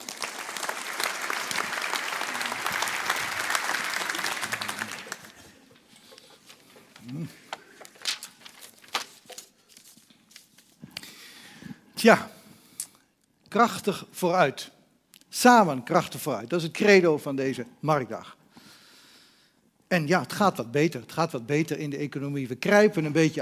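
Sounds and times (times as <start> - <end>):
large audience clapping: 0.0 - 5.9
faint room noise: 0.0 - 23.4
speech: 12.0 - 12.3, 13.5 - 14.8, 15.4 - 18.4, 19.9 - 23.4.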